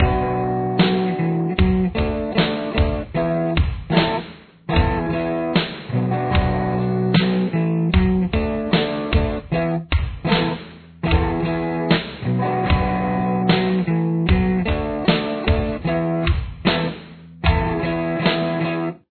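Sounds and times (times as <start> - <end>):
slow rhythm: 0.0 - 19.0.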